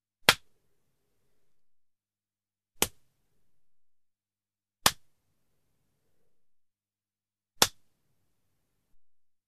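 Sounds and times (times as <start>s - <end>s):
face slap: 0.2s - 0.5s, 2.8s - 3.1s, 4.8s - 5.1s, 7.6s - 7.9s.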